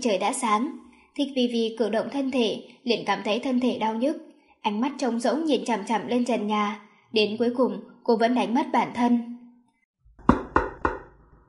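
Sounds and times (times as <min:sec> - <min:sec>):
speech: 0:00.0 - 0:09.3
knocking on a door: 0:10.2 - 0:11.2.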